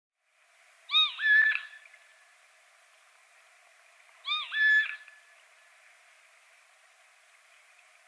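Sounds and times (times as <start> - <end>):
light background hiss: 0.2 - 8.0
Eurasian jay mew calls, Garrulus glandarius: 0.9 - 1.8, 4.2 - 5.1.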